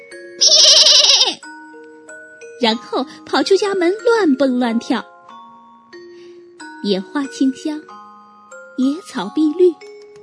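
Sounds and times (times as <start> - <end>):
young goat bleating loudly: 0.4 - 1.4
speech: 2.6 - 5.1, 6.8 - 8.1, 8.8 - 9.9.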